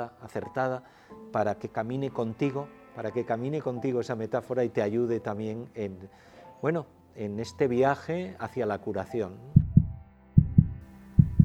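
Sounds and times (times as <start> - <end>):
speech: 0.0 - 9.6
heartbeat: 9.6 - 11.4.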